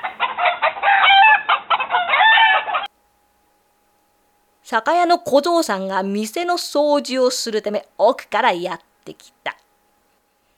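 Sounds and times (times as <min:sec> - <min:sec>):
rooster crowing at dawn: 0:00.0 - 0:02.9
speech: 0:04.7 - 0:09.4.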